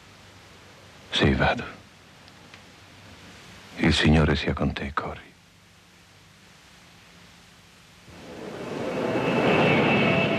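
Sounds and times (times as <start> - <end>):
speech: 1.2 - 1.8, 3.8 - 5.3
airplane engine roaring with high thin whine: 8.1 - 10.3.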